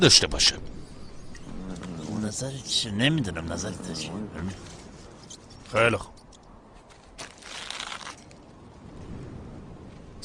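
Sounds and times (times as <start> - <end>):
speech: 0.0 - 0.8, 2.3 - 4.8, 5.7 - 6.1
bag being opened with a crinkling rustle: 6.8 - 8.5.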